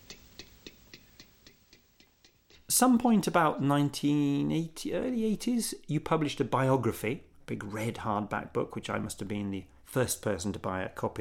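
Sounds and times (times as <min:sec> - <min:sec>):
clock ticking: 0:00.0 - 0:03.7
faint hiss: 0:00.0 - 0:11.1
speech: 0:02.8 - 0:11.1.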